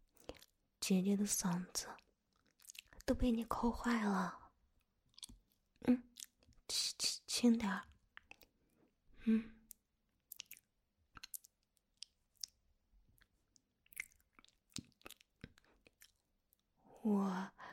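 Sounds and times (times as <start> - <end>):
speech: 0.3 - 2.1, 3.1 - 4.4, 5.8 - 6.1, 7.4 - 7.9, 9.2 - 9.6, 17.0 - 17.7
mouth nibbling and chewing on a finger: 5.1 - 6.6, 9.7 - 12.6, 13.2 - 16.6.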